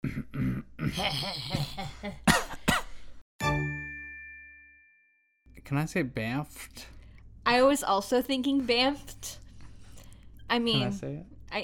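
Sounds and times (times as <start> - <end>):
person coughing: 0.0 - 3.0
throat clearing: 0.0 - 3.0
speech: 0.9 - 2.3, 5.7 - 9.4, 10.5 - 11.6.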